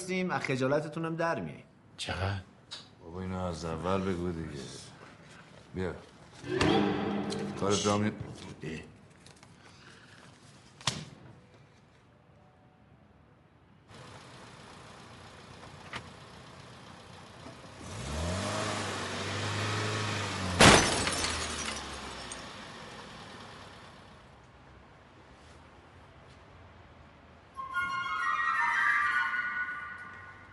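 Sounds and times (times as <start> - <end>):
speech: 0.1 - 4.9, 5.7 - 8.9
car engine roaring: 16.3 - 24.2
car crash with crunching metal: 20.3 - 22.6
debris rattling after a car crash: 20.6 - 22.4
glass shattering in a car crash: 20.6 - 22.5
faint high electronic tone: 27.6 - 30.5.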